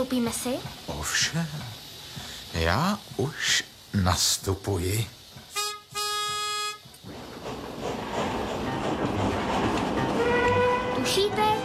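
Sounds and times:
speech: 0.0s - 5.2s
express train wheels rumbling on track: 0.0s - 11.6s
express train whistle blasts: 5.5s - 7.0s, 10.2s - 11.6s.

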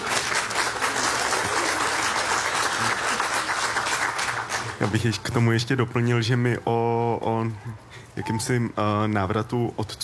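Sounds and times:
audience applause: 0.0s - 4.9s
speech: 4.8s - 10.0s.

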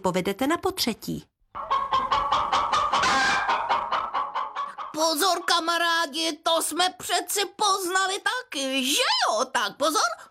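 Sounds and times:
speech: 0.0s - 1.3s, 5.0s - 10.3s
chicken clucking and squawking: 1.5s - 5.8s.

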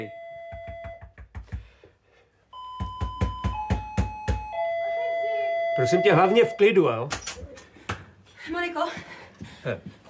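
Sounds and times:
electric doorbell ringing: 0.0s - 1.1s, 2.6s - 6.8s
speech: 5.8s - 7.3s, 9.6s - 9.9s.

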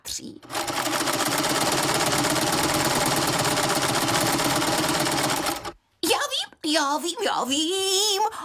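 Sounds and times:
speech: 0.2s - 0.7s, 6.8s - 8.4s
sewing machine running: 0.4s - 5.8s.

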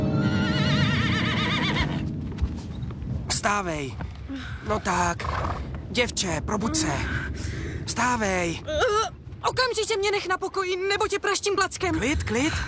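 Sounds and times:
horse neighing: 0.2s - 2.1s
hooves clip-clopping: 0.8s - 6.2s
speech: 3.5s - 12.6s.

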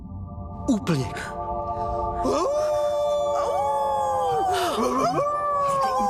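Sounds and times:
speech: 0.7s - 1.4s, 2.2s - 2.7s, 4.8s - 6.0s
wolves howling under a full moon: 2.2s - 6.0s.

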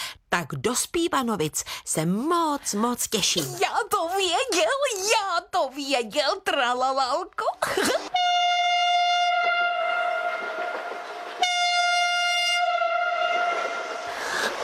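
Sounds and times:
speech: 0.4s - 8.1s
train horn blasts: 8.2s - 14.0s
faint rumbling of the train: 8.2s - 14.6s.

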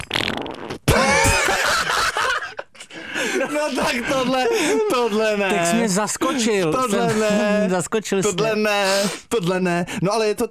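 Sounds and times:
loud squeaky fart: 0.0s - 1.0s
laughter: 0.9s - 8.8s
speech: 3.6s - 10.4s.

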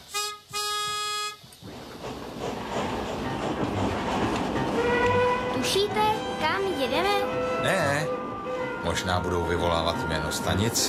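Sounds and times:
clickety-clack rumble of a moving fun express train: 0.0s - 10.8s
fun express train horn blasts: 0.1s - 1.5s, 4.8s - 10.7s
speech: 5.7s - 8.2s, 8.8s - 10.8s.

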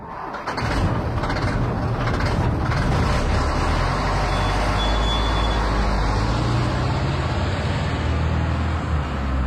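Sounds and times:
large truck diesel engine rumbling: 0.0s - 9.4s
faint high-pitched beep tone: 4.3s - 5.6s.

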